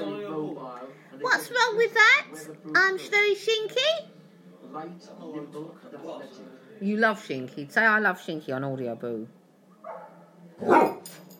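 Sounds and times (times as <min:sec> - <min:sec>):
speech: 0:01.2 - 0:04.1, 0:04.7 - 0:09.4, 0:10.6 - 0:11.2
Spitz-type dog with a profuse coat barking: 0:09.8 - 0:11.1.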